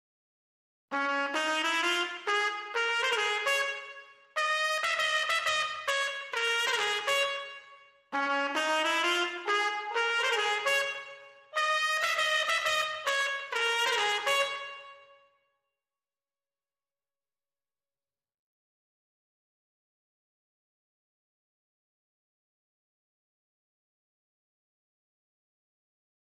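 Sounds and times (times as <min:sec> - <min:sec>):
clean trumpets: 0:00.9 - 0:15.2.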